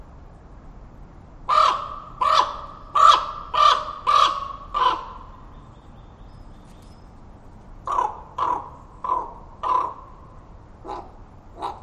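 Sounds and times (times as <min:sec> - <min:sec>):
raven calling from branches overhead in a park: 0:01.5 - 0:05.9, 0:07.8 - 0:11.8.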